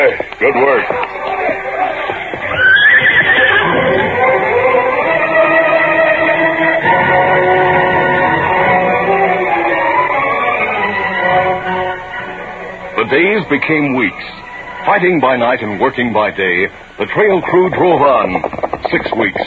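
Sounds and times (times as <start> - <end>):
speech: 0.0 - 1.2, 13.5 - 19.4
steady sustained sound: 0.0 - 19.4
horse whinnying: 1.8 - 4.3.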